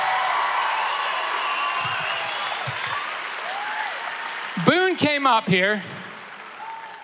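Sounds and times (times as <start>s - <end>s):
faint cheers and whistles: 0.0s - 4.8s, 6.5s - 7.0s
large crowd applauding: 0.0s - 7.0s
speech: 4.6s - 5.9s.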